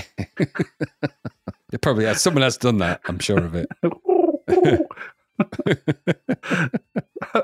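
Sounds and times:
short choppy vocal bursts like stifled chuckles: 0.0 - 1.1, 3.0 - 5.7
speech: 0.0 - 4.0, 4.6 - 6.8
laughter: 0.0 - 7.4
human voice imitating a pigeon's cooing: 3.5 - 5.7.

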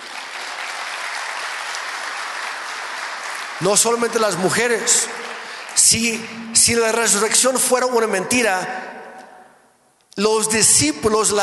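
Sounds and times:
congregation applauding during a church sermon: 0.0 - 8.1
speech: 3.6 - 9.0, 10.2 - 11.4.

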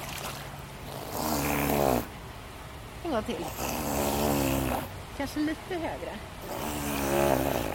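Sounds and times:
seal vocalizing with a snorting growl on a keeper's request: 0.9 - 2.1, 3.4 - 4.9, 6.4 - 7.7
speech: 3.1 - 4.1, 5.2 - 7.6.

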